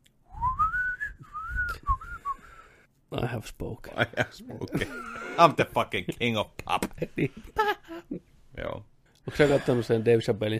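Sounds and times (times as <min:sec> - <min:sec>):
person whistling a melody imitating pan flutes: 0:00.4 - 0:02.6
speech: 0:03.1 - 0:10.5
laughter: 0:03.9 - 0:05.7, 0:09.3 - 0:10.2.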